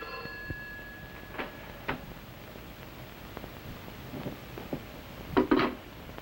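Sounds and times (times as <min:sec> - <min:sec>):
telephone ringing in a hotel room: 0:00.0 - 0:02.0
steady hiss: 0:00.0 - 0:06.2.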